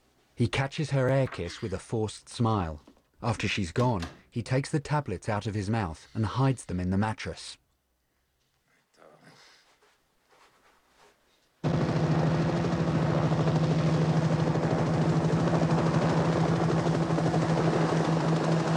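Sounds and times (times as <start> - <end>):
speech: 0.4 - 7.6
helicopter rotor chop flying over a snowy road: 11.6 - 18.7.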